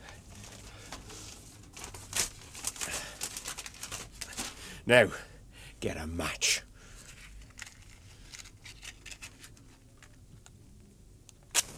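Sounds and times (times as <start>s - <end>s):
papers crumpled and pushed into a tin wastepaper basket: 0.0s - 4.7s, 7.0s - 10.2s
speech: 4.9s - 6.7s.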